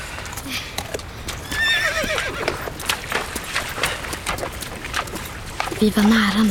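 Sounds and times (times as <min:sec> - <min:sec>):
faint outdoor background: 0:00.0 - 0:06.4
horse hooves clip-clopping: 0:00.0 - 0:06.4
horse whinnying while led to a river: 0:01.4 - 0:02.8
speech: 0:05.8 - 0:06.4.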